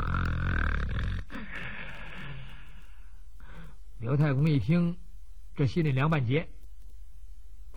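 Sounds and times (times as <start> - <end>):
voice imitating loud snoring of a man asleep: 0.0 - 1.4
speech: 4.0 - 5.0, 5.6 - 6.6.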